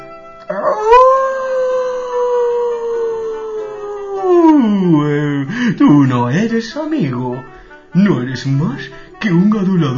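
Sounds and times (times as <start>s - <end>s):
wolf howling: 0.5s - 5.4s
speech: 5.9s - 9.9s.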